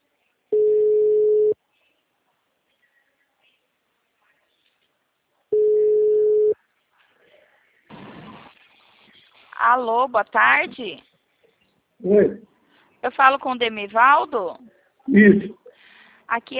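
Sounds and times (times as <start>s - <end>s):
telephone ringback tone while a call is placed: 0.6s - 1.6s, 5.6s - 6.6s
speech: 9.7s - 11.1s, 12.0s - 15.6s, 16.3s - 16.5s.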